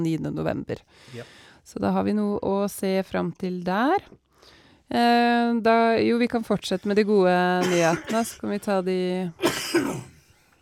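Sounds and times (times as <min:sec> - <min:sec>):
speech: 0:00.0 - 0:10.1
harsh coughs: 0:07.6 - 0:08.5, 0:09.4 - 0:10.3.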